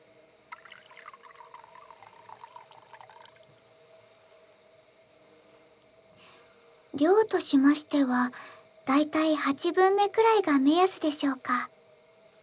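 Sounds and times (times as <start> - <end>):
hot water trickling from a ladle into a tea bowl: 0.5 - 3.6
speech: 7.0 - 11.7.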